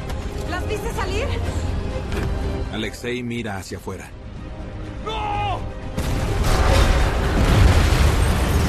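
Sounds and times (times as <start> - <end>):
speech: 0.6 - 4.2
massive explosion with deep rumble and roar: 6.0 - 8.6.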